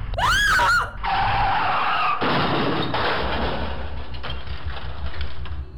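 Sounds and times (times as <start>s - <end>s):
tire screech of car skidding: 0.1s - 2.2s
car crashing into truck: 1.0s - 5.6s.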